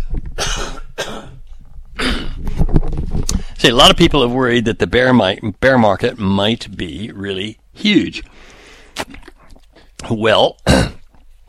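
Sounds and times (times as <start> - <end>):
harsh coughs: 0.4 - 1.4, 2.0 - 2.4, 10.6 - 11.1
speech: 3.6 - 9.2, 10.0 - 11.0.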